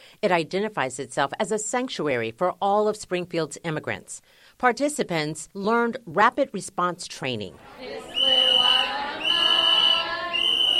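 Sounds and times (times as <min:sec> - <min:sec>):
speech: 0:00.2 - 0:08.3
orange plastic whistle blasts: 0:08.2 - 0:10.7.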